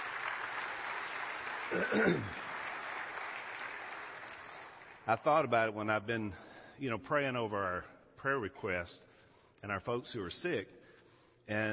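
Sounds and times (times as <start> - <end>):
audience applause: 0.0 - 5.0
speech: 1.7 - 2.5, 5.1 - 10.8, 11.5 - 11.7.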